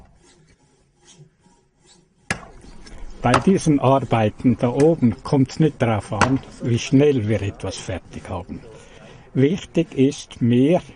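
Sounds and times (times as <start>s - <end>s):
hand saw cutting through wood: 0.0s - 3.5s
speech: 3.2s - 10.9s.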